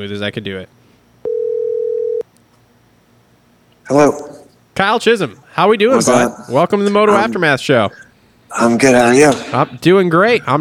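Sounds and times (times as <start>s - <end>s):
speech: 0.0s - 0.8s, 3.9s - 10.6s
telephone dial tone of an outgoing call: 1.3s - 2.2s.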